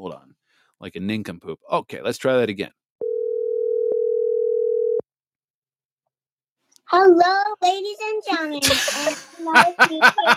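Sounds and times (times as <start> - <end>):
speech: 0.8 - 2.8, 6.9 - 10.3
steady loud telephone dial tone: 3.0 - 5.0
laughter: 8.6 - 10.3.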